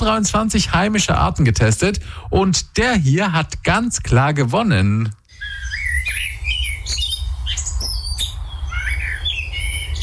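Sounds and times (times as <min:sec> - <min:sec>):
speech: 0:00.0 - 0:05.6
common blackbird singing: 0:05.3 - 0:10.0.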